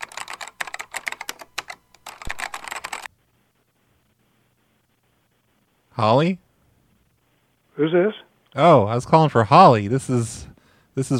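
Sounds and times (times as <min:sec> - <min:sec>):
rapid typing on a computer keyboard: 0:00.0 - 0:03.1
speech: 0:06.0 - 0:06.4, 0:07.8 - 0:11.1.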